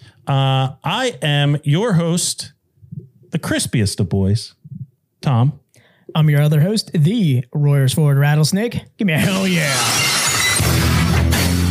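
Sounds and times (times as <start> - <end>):
speech: 0.3 - 2.6, 3.3 - 4.6, 5.2 - 10.8
sheet of glass shattering: 9.3 - 11.1
tinkling glass shards: 9.7 - 10.8.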